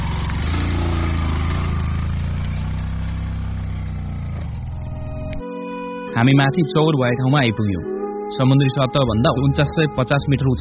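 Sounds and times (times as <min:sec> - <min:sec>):
motorcycle engine labouring uphill carrying two riders: 0:00.0 - 0:05.4
speech: 0:06.2 - 0:10.6.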